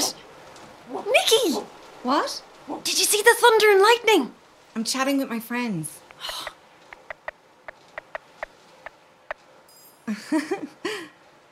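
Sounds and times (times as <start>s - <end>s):
speech: 1.0s - 6.4s, 10.1s - 11.1s
sparse raindrops pattering: 6.0s - 9.4s.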